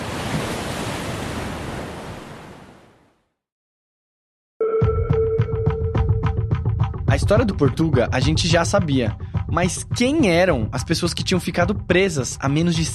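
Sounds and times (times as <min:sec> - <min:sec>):
heavy surf crashing against rocks: 0:00.0 - 0:02.7
tonal sound: 0:04.6 - 0:06.9
speech: 0:07.1 - 0:12.9.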